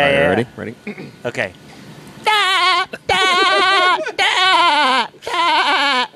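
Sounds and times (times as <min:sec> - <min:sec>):
speech: 0:00.0 - 0:01.7
person imitating a cartoon character laugh like a sheep bleat: 0:02.3 - 0:06.1.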